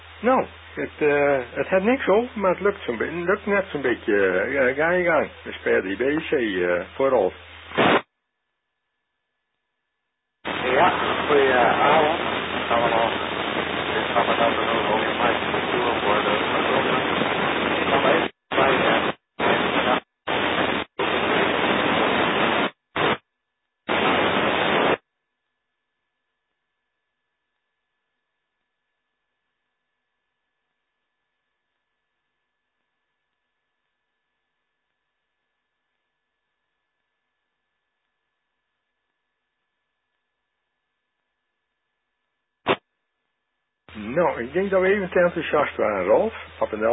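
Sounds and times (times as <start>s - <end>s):
harsh radio static crackling in choppy bursts: 0.0s - 8.1s, 10.4s - 23.3s, 23.9s - 25.0s, 42.6s - 42.9s, 43.9s - 46.9s
weak radio signal: 0.0s - 8.2s, 10.4s - 25.1s, 27.5s - 46.9s
speech: 0.2s - 7.9s, 44.4s - 46.9s.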